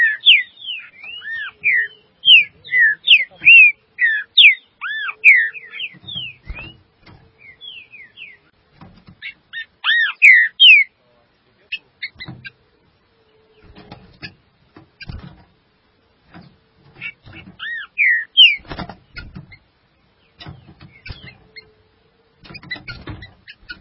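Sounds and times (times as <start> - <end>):
green-winged saltator song of rich swooping whistled notes: 0.0 - 6.8, 9.8 - 10.9, 17.6 - 18.7.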